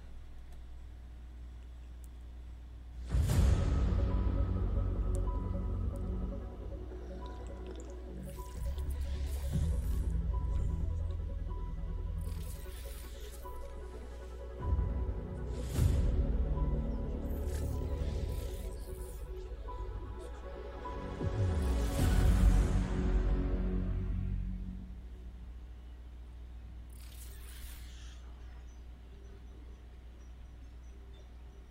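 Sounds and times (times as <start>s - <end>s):
cinematic game trailer music: 3.0s - 25.9s.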